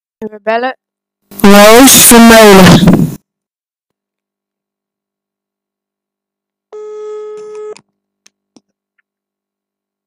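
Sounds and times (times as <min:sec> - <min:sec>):
speech: 0:00.2 - 0:00.8, 0:01.4 - 0:03.2
telephone ringing tone of a call being placed: 0:06.7 - 0:07.8.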